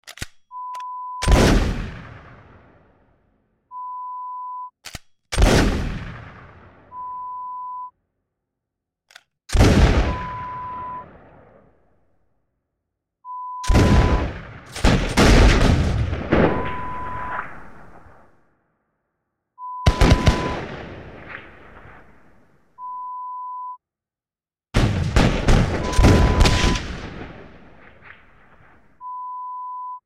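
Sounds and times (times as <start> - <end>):
musket fire: 1.2 - 3.2, 5.3 - 7.0, 9.5 - 11.8, 13.6 - 18.4, 19.8 - 22.6, 24.8 - 29.0.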